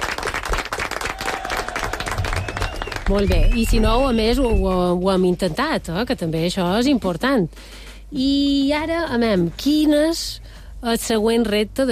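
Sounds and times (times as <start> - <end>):
group applauding after a music-class exercise: 0.0 - 4.2
speech: 3.1 - 11.9.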